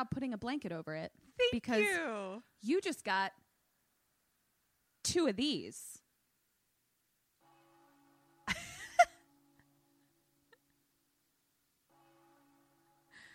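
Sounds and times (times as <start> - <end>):
speech: 0.0 - 3.4, 5.0 - 6.0
church bells ringing: 7.4 - 10.5, 11.9 - 13.3.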